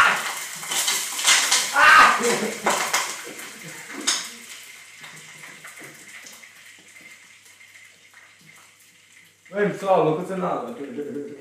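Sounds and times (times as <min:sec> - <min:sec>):
metal pans clattering: 0:00.0 - 0:06.1
water poured over browning food sizzling in a hot pan: 0:00.0 - 0:11.3
speech: 0:02.2 - 0:02.8, 0:09.6 - 0:11.3.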